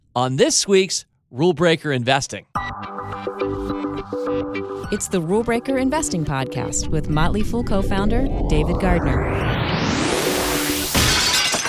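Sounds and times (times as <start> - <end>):
speech: 0.2 - 10.0
glass shattering as an intruder breaks in: 10.9 - 11.6.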